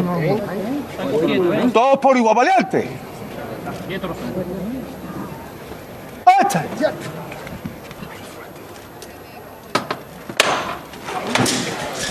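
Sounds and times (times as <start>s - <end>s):
crowd murmuring: 0.0s - 12.0s
speech: 0.1s - 3.1s, 3.8s - 4.7s, 6.4s - 7.2s
knocker struck on a processional float in Seville: 9.8s - 10.8s.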